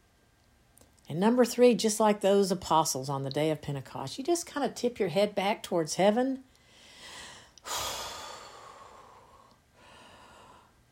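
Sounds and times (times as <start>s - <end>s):
speech: 1.1s - 6.5s
deep breath drawn in through the mouth: 6.6s - 10.8s.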